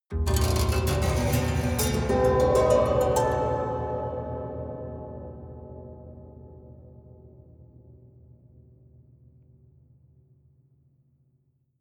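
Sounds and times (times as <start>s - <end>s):
haunted strings slow hard up stroke: 0.3s - 6.9s.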